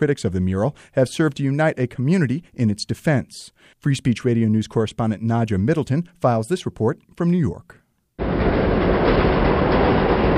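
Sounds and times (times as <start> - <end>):
speech: 0.0 - 8.4
subway train running with loud continuous rumble: 8.2 - 10.3
subway train wheels clattering on track: 8.2 - 10.3.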